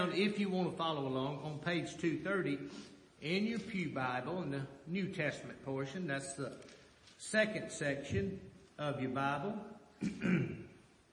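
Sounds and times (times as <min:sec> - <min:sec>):
speech: 0:00.0 - 0:10.6
gruff throat clearing of a speaker with allergies: 0:10.0 - 0:10.8.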